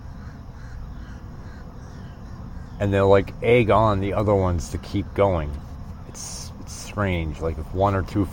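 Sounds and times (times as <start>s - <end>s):
crows cawing in flight: 0.0s - 2.9s
steady low outdoor rumble: 0.0s - 8.3s
speech: 2.8s - 6.4s, 7.0s - 8.3s.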